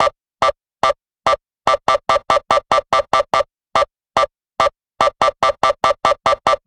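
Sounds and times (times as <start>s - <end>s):
dj effects loop: 1.7s - 3.9s, 4.6s - 6.6s.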